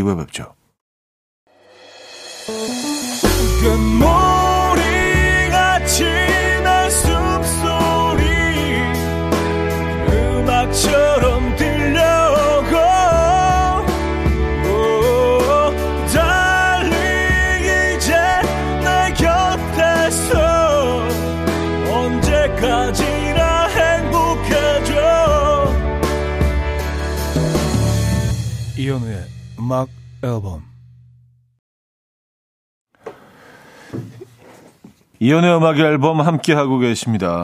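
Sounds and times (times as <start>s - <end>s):
speech: 0.0s - 0.6s, 3.6s - 4.3s, 29.7s - 30.7s, 35.2s - 37.4s
song with full band played on radio: 1.6s - 28.9s.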